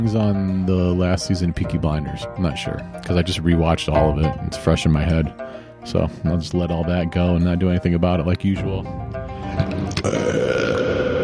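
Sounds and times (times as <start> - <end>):
speech: 0.0 - 10.6
long loud rumbling gurgling belch: 9.8 - 11.2.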